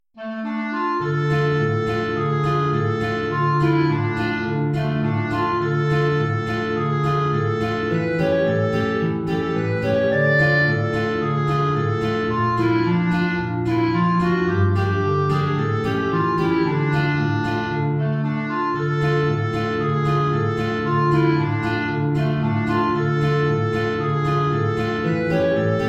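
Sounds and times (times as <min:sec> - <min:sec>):
low B-flat clarinet: 0:00.2 - 0:25.8.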